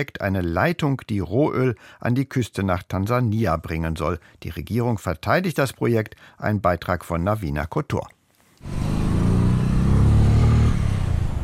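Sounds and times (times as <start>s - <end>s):
speech: 0.0s - 8.8s
new motorcycle engine rumbling at a settlement in western Uganda near Lake Albert: 8.6s - 11.4s.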